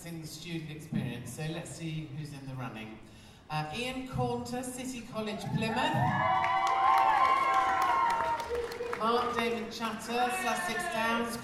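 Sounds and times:
speech: 0:00.0 - 0:07.0, 0:09.0 - 0:11.4
small crowd cheering and whooping: 0:05.4 - 0:11.3
sharp claps: 0:06.4 - 0:09.6
overlapping voices: 0:06.6 - 0:11.4.

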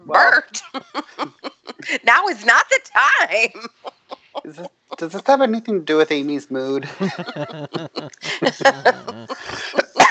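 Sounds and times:
short voiced sounds from the coughing person: 0:00.0 - 0:05.5, 0:07.5 - 0:09.9
speech: 0:00.5 - 0:00.9, 0:02.0 - 0:03.9, 0:04.5 - 0:09.8
laughter: 0:00.5 - 0:10.0
person coughing in harsh breathy bursts: 0:07.2 - 0:10.0.

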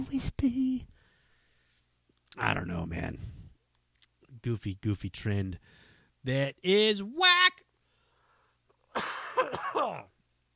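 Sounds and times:
speech: 0:00.0 - 0:01.0, 0:02.4 - 0:03.4, 0:04.4 - 0:07.3, 0:09.8 - 0:10.1
person coughing raspily: 0:08.9 - 0:10.1.

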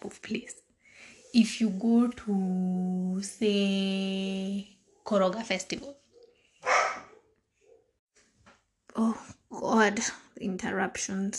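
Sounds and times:
speech: 0:00.1 - 0:00.6, 0:01.3 - 0:06.0, 0:09.0 - 0:11.3
dog barking: 0:06.1 - 0:08.0.

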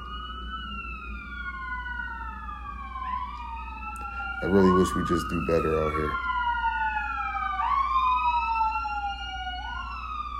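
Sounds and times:
emergency vehicle siren wailing outside a window: 0:00.0 - 0:10.3
low rumble of traffic: 0:00.0 - 0:10.3
speech: 0:04.4 - 0:06.3.

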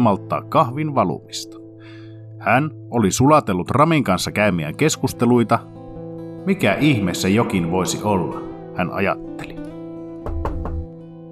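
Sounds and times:
speech: 0:00.0 - 0:05.8, 0:06.4 - 0:09.5
knocking on a door: 0:10.2 - 0:10.9.

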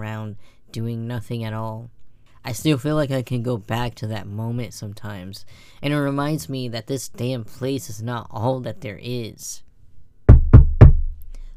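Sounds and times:
speech: 0:00.0 - 0:09.6
knocking on a wooden door: 0:10.3 - 0:11.2.

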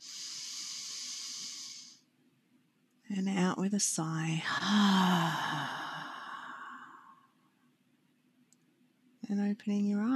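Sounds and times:
deep inhale during guided breathing: 0:00.0 - 0:02.1, 0:04.5 - 0:07.3
speech: 0:03.1 - 0:05.8, 0:09.5 - 0:10.1.

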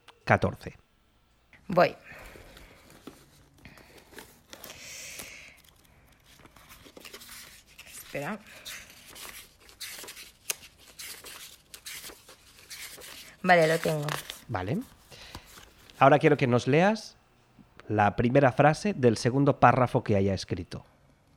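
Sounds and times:
speech: 0:00.3 - 0:00.8, 0:01.7 - 0:02.2, 0:08.1 - 0:08.8, 0:13.4 - 0:15.0, 0:16.0 - 0:17.1, 0:17.9 - 0:20.9
book pages flipping: 0:02.3 - 0:16.0.

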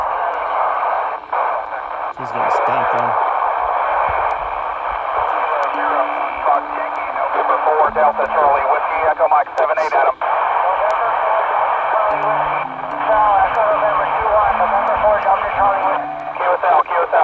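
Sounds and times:
overlapping voices of callers in an amateur radio pileup: 0:00.0 - 0:17.2
speech: 0:02.2 - 0:03.2, 0:08.0 - 0:08.6.

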